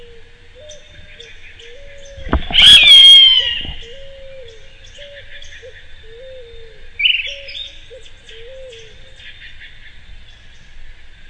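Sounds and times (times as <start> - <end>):
steady high insect drone: 0.0 - 11.2
Myiarchus ferox ferox short-crested flycatcher buzzy rolled call: 2.2 - 4.4.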